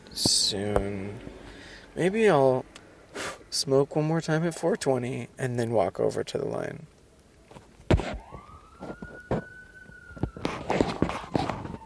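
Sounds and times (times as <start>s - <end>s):
street noise: 0.0s - 5.0s, 6.9s - 11.8s
speech: 0.2s - 1.3s, 2.0s - 2.7s, 3.5s - 7.0s
footsteps: 7.5s - 9.5s, 10.1s - 11.8s
emergency vehicle siren wailing: 8.0s - 11.8s.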